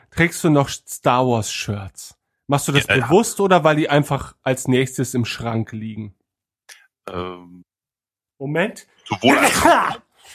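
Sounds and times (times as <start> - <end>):
speech: 0.2 - 6.2, 7.1 - 7.7, 8.4 - 10.3
person sneezing: 9.1 - 10.3.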